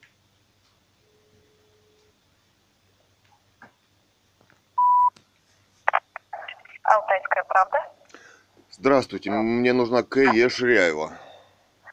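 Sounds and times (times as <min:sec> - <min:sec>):
steady electronic telephone tone: 0:04.8 - 0:05.1
telephone ringing signal bursts: 0:04.8 - 0:05.1
speech: 0:06.9 - 0:07.9, 0:08.7 - 0:11.2.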